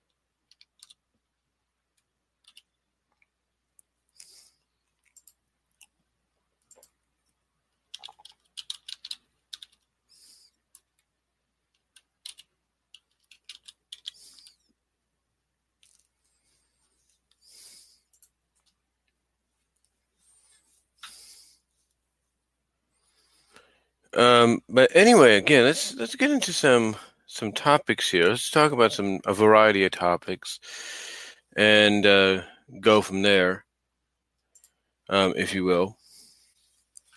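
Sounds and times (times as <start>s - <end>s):
typing on a computer keyboard: 0.4s - 1.0s, 2.4s - 2.7s, 7.9s - 9.9s, 11.7s - 14.6s
speech: 24.2s - 33.6s, 35.1s - 36.0s.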